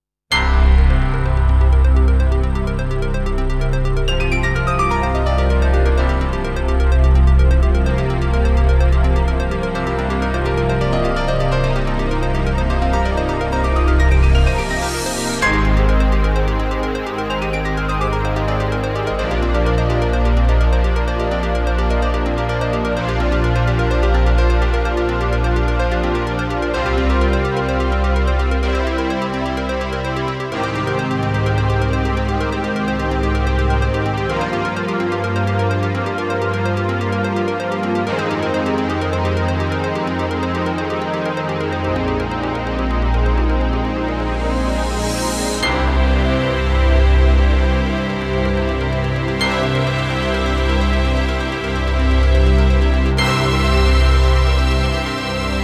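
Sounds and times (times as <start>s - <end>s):
deep background music: 0.3s - 55.6s.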